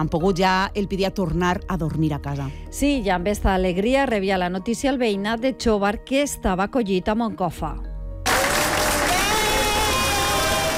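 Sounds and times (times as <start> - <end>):
speech: 0.0 - 7.9
evacuated residents clapping: 8.2 - 10.7
evacuated residents cheering: 8.3 - 10.7.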